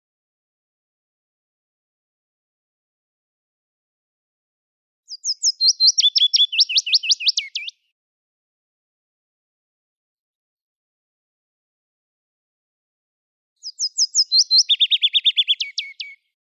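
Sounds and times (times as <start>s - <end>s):
willow warbler singing: 5.1s - 7.7s, 13.6s - 16.2s.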